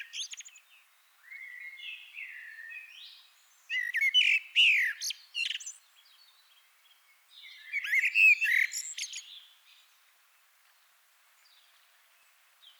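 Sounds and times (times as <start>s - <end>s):
Common blackbird Turdus merula singing: 0.0s - 6.6s, 7.3s - 9.9s.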